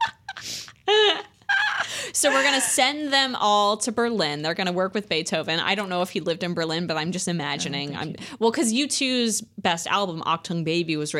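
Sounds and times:
person doing a nasal squawk impression: 1.0 - 2.8
speech: 2.2 - 11.1.

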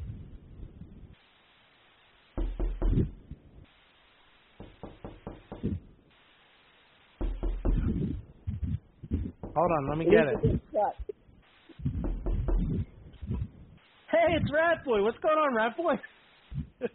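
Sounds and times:
loud knocking on a wooden cabin door: 2.4 - 3.1, 4.6 - 5.8, 7.2 - 8.1, 9.2 - 10.6, 11.9 - 12.8
speech: 9.6 - 11.1, 14.2 - 16.1.

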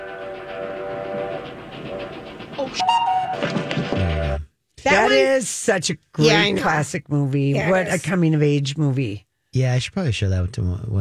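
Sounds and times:
train horn blaring: 0.0 - 3.4
train rumbling: 0.0 - 4.4
speech: 2.6 - 3.7, 4.9 - 10.9.

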